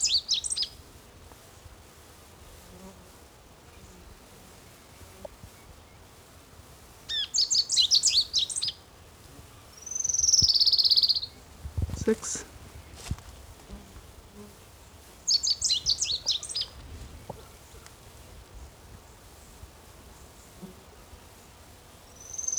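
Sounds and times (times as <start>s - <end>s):
sparrow singing: 0.0s - 0.7s, 7.1s - 8.8s, 9.8s - 13.0s, 15.2s - 16.8s, 22.2s - 22.5s.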